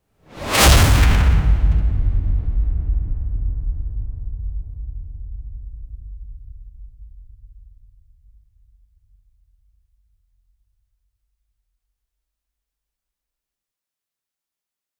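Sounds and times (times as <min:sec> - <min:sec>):
deep whoosh: 0:00.3 - 0:05.0.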